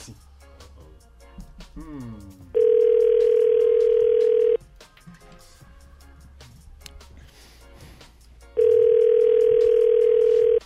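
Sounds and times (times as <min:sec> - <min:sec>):
telephone ringback tone: 0:02.6 - 0:04.6, 0:08.6 - 0:10.6.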